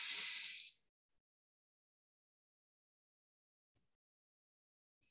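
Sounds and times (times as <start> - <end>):
slow breathy exhale during a relaxation exercise: 0.0 - 0.8.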